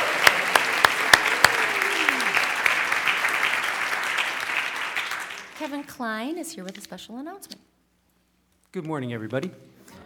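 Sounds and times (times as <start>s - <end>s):
sharp loud claps: 0.0s - 5.8s
crowd applauding for teens who led the classroom: 0.0s - 5.9s
speech: 5.7s - 7.7s, 8.7s - 9.7s.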